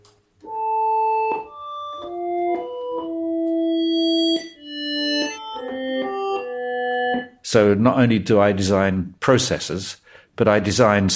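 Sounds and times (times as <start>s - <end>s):
sustained synthesizer notes from a simple two-oscillator software synth: 0.5s - 7.4s
speech: 7.5s - 11.1s.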